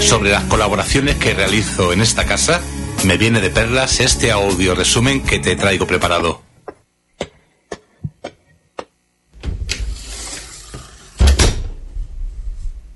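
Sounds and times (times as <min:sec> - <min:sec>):
speech: 0:00.0 - 0:06.4
autopsy room door opening: 0:09.4 - 0:12.2.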